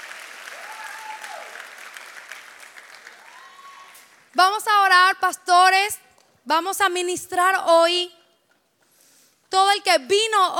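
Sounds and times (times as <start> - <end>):
church audience applauding: 0.0 - 4.3
speech: 4.4 - 8.2, 9.5 - 10.5.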